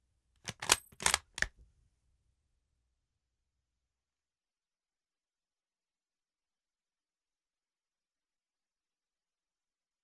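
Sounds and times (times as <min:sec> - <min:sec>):
K98 bolt action worked at fast speed: 0:00.5 - 0:01.5.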